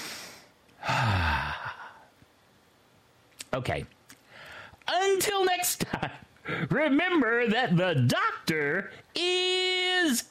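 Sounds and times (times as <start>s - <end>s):
deep cleansing breath sigh: 0.0s - 2.1s
speech: 3.6s - 4.0s, 5.2s - 10.3s.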